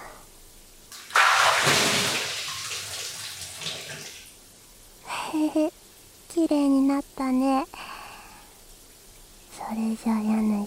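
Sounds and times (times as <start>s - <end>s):
hot water poured over someone in a bath: 0.9s - 4.6s
speech: 6.4s - 7.8s, 9.7s - 10.6s.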